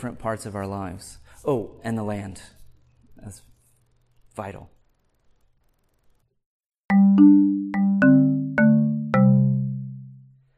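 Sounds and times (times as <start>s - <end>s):
speech: 0.0s - 2.6s, 3.2s - 3.5s, 4.4s - 4.8s
instrumental phrase of plucked bell-like notes as podcast outro music: 6.9s - 10.3s.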